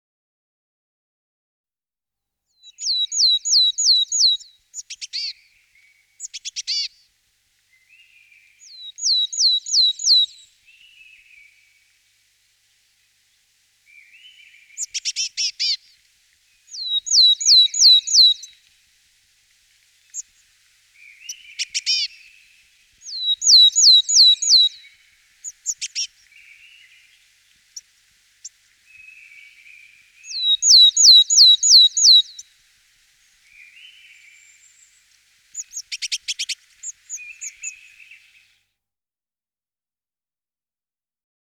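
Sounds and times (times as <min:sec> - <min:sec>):
willow tit singing: 0:02.6 - 0:06.9, 0:07.7 - 0:11.9, 0:13.9 - 0:16.0, 0:16.6 - 0:18.6, 0:21.0 - 0:27.8, 0:28.4 - 0:32.5, 0:33.4 - 0:35.0, 0:35.6 - 0:38.5.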